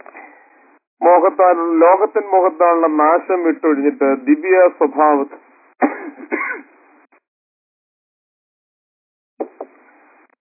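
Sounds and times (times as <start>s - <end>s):
speech: 1.1s - 5.5s
man coughing and clearing throat during a spoken talk: 5.8s - 6.7s.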